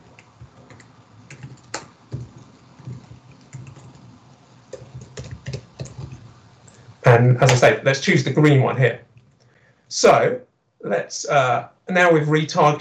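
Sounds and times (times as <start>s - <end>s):
typing on a computer keyboard while building an app: 0.1s - 6.8s
speech: 7.1s - 9.1s, 10.0s - 12.7s.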